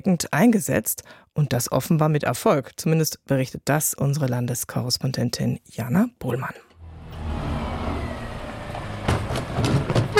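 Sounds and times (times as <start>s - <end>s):
speech: 0.0s - 6.7s
large garbage truck engine rumbling while parking in a side street in Saarlouis: 6.8s - 10.1s.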